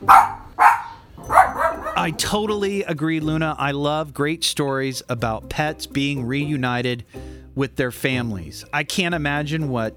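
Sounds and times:
pet dog barking in reply to a question: 0.0s - 2.2s
speech: 2.0s - 9.9s.

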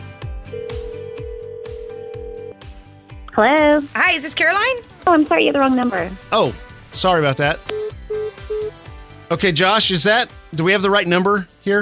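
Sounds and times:
ringback tone of an outgoing phone call: 0.5s - 2.6s, 7.7s - 8.8s
speech: 3.4s - 7.8s, 9.3s - 11.8s
thumping rhythmic beat: 4.8s - 8.8s.

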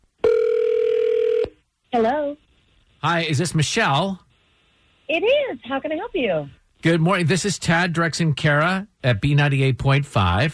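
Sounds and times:
ringback tone from an outgoing phone call: 0.2s - 1.6s
speech: 2.0s - 2.4s, 3.0s - 4.2s, 5.1s - 10.5s.

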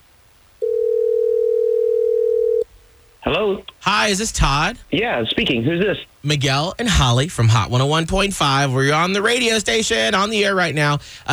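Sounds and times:
faint low noise: 0.0s - 11.3s
telephone dial tone: 0.6s - 2.6s
speech: 3.3s - 11.3s.

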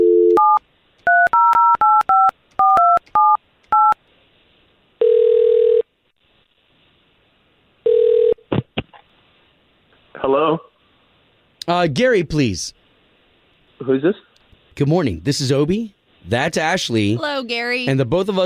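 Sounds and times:
telephone ringback tone on the line: 0.0s - 4.0s, 5.0s - 5.8s, 7.9s - 8.4s
speech: 11.7s - 12.8s, 13.8s - 18.4s.

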